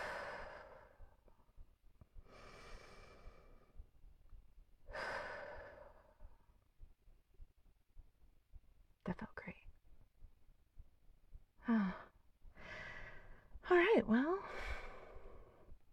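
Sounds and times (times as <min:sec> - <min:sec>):
deep breaths drawn and let out: 0:00.0 - 0:07.0, 0:11.6 - 0:15.9.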